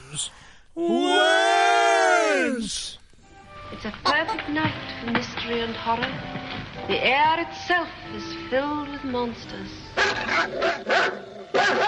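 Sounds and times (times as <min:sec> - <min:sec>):
speech: 0:00.1 - 0:01.4, 0:02.6 - 0:03.0, 0:03.7 - 0:11.8
dog barking: 0:10.0 - 0:11.8.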